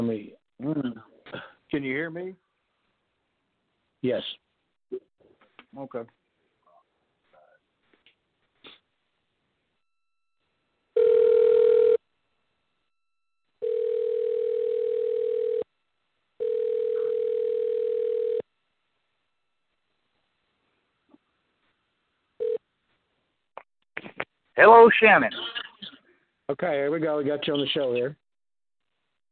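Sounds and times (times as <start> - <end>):
speech: 0.0 - 2.4, 4.0 - 5.1, 5.7 - 6.2, 24.6 - 25.6, 26.5 - 28.2
telephone line dial tone: 11.0 - 12.0, 13.6 - 15.6, 16.4 - 18.4, 22.4 - 22.6.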